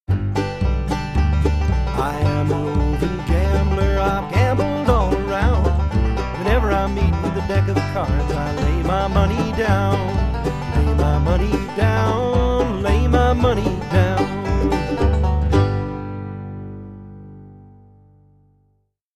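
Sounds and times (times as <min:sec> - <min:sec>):
alternate bass mix: 0:00.0 - 0:18.7.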